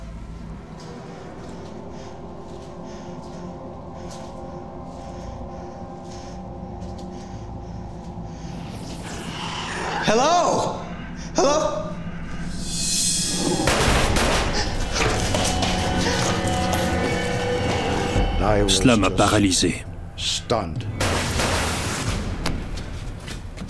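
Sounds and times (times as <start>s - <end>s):
dense dramatic background: 0.0s - 23.6s
speech: 10.1s - 10.8s, 18.7s - 19.9s, 20.5s - 21.1s
sharp gunshots: 13.6s - 14.8s, 21.0s - 22.8s.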